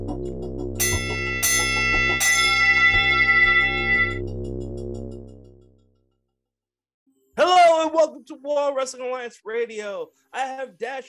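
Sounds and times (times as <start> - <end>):
bright metallic bell clanging: 0.8 - 4.2
speech: 8.5 - 11.0.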